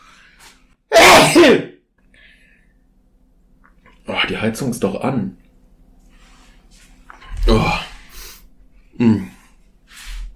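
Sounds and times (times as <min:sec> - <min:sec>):
person sneezing: 0:00.9 - 0:01.7
speech: 0:04.3 - 0:05.4.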